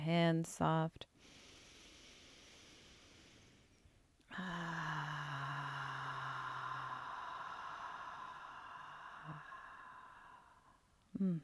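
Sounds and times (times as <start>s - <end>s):
speech: 0.0s - 1.4s, 4.3s - 5.1s, 11.2s - 11.4s
deep breath in and out during a guided breathing exercise: 1.2s - 11.0s.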